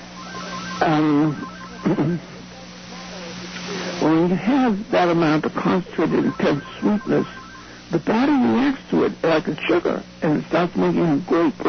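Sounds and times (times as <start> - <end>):
telephone ringing in warbling electronic bursts: 0.0 - 2.5, 5.9 - 8.0
steady low hum: 0.0 - 11.6
speech: 0.8 - 2.3, 4.3 - 11.6.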